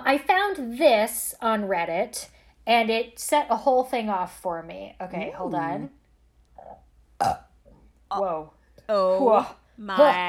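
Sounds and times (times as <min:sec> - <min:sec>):
speech: 0:00.1 - 0:06.0, 0:07.2 - 0:07.4, 0:08.1 - 0:10.2
person burping: 0:06.6 - 0:07.6.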